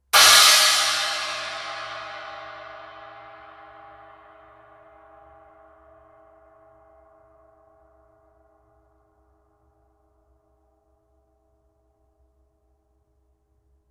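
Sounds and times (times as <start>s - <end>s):
21-inch hammered china cymbal: 0.0s - 4.6s.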